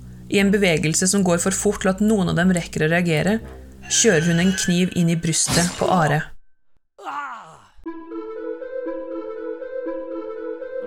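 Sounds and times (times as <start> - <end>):
speech: 0.3 - 6.3
choked groan deep in the throat: 7.0 - 7.8
strained moan: 7.0 - 7.9.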